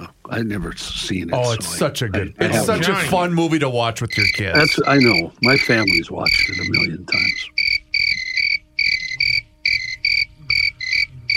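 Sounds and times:
speech: 0.3s - 7.6s
cricket chirping: 4.1s - 11.3s.

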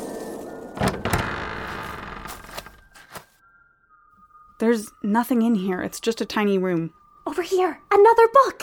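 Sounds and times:
door scraping and creaking as it swings open: 0.7s - 3.0s
door thunks: 0.8s - 2.8s
speech: 4.6s - 8.6s.

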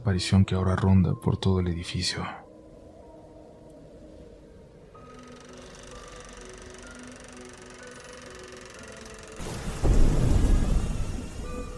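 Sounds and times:
speech: 0.1s - 2.4s
deep thunder rumble: 9.4s - 11.7s
rain falling on a night street: 9.4s - 11.7s.

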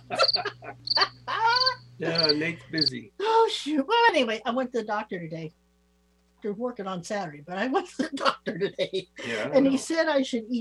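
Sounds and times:
laughter: 0.0s - 2.6s
frogs croaking: 0.0s - 3.0s
faint steady hum: 0.0s - 10.5s
speech: 2.0s - 5.6s, 6.4s - 10.5s.

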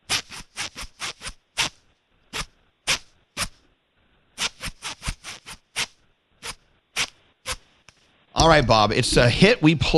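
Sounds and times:
zipper on trousers yanked up and down rhythmically: 0.0s - 3.7s, 4.4s - 7.8s
speech: 8.4s - 9.9s.

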